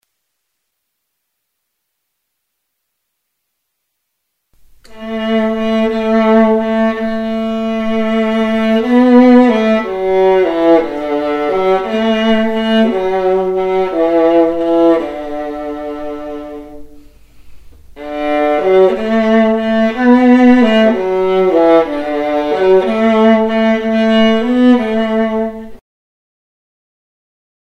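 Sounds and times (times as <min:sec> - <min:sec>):
viola: 0:04.8 - 0:25.8.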